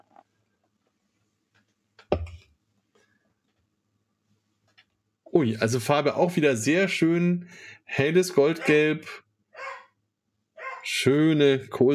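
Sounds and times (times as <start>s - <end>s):
speech: 5.3s - 9.2s, 10.9s - 11.9s
dog barking: 9.6s - 9.9s, 10.6s - 10.9s.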